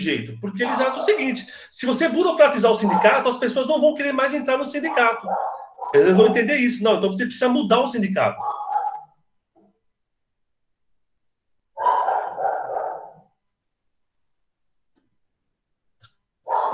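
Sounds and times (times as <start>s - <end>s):
speech: 0.0s - 8.6s
dog barking in short loud bursts: 0.6s - 1.4s, 2.7s - 3.4s, 4.8s - 6.5s, 8.3s - 9.1s, 11.8s - 13.3s, 16.4s - 16.7s.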